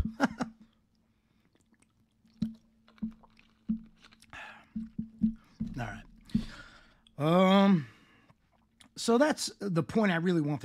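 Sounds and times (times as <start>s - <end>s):
person sipping and swallowing water: 0.6s - 7.2s
speech: 7.2s - 7.9s, 9.0s - 10.6s.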